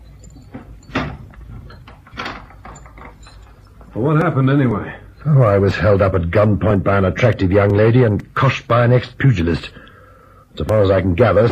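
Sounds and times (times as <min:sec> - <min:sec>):
mechanical clack of a door being locked from the inside: 0:00.5 - 0:03.5
speech: 0:03.9 - 0:09.8, 0:10.6 - 0:11.5.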